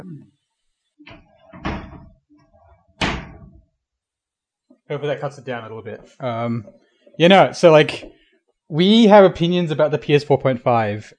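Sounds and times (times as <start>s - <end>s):
door closing thud: 1.1s - 2.2s, 3.0s - 3.6s
door handling rattles: 1.1s - 2.2s
speech: 4.9s - 11.1s.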